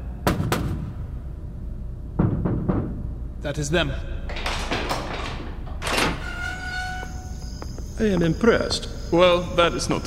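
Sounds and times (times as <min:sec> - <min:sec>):
low rumbling noise: 0:00.0 - 0:10.0
speech: 0:03.4 - 0:04.4, 0:08.0 - 0:10.0
heavy clunks and thuds of a back door being opened: 0:04.3 - 0:07.0.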